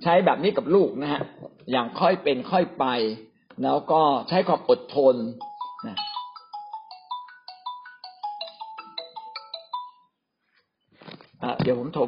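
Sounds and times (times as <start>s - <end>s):
speech: 0.0s - 6.1s, 11.4s - 12.0s
phone ringtone of an incoming call: 5.3s - 10.2s.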